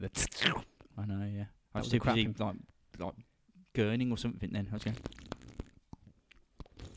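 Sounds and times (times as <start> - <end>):
speech: 0.0 - 3.2, 3.8 - 5.3
slurping a beer: 4.8 - 6.9.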